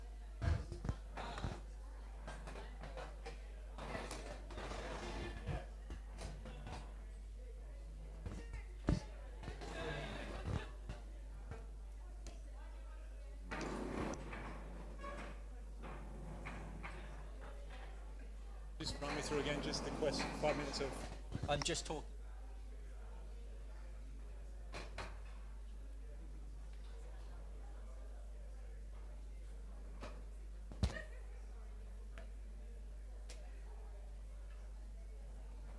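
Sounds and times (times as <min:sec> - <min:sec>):
murmur of people talking in a busy room: 0:00.0 - 0:35.7
chairs scraping and bumping across a hard floor: 0:03.8 - 0:05.5, 0:13.5 - 0:17.1, 0:18.9 - 0:21.3
speech: 0:18.8 - 0:22.1.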